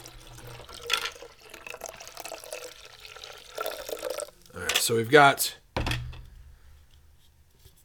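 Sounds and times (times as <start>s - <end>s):
soft fizzing wash of liquid: 0.0s - 4.5s
lager beer from a 12-ounce can pouring into a glass: 0.0s - 4.6s
speech: 4.8s - 5.6s.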